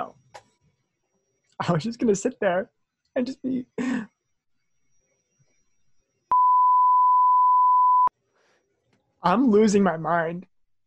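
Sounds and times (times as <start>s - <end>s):
speech: 1.6s - 4.1s, 9.2s - 10.5s
censor bleep: 6.3s - 8.1s.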